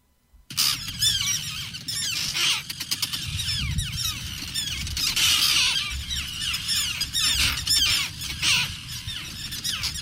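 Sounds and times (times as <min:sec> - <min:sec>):
angry terns squawking: 0:00.5 - 0:10.0
low rumble of wind or surf: 0:03.2 - 0:10.0.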